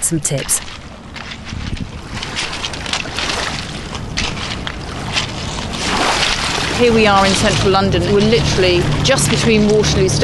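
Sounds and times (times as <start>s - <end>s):
low rumble of traffic: 0.0s - 10.2s
moving water of the Thames: 0.0s - 10.2s
speech: 0.1s - 0.8s, 6.8s - 10.2s
wind rushing across the microphone on a pebbly Thames shore: 0.6s - 10.2s.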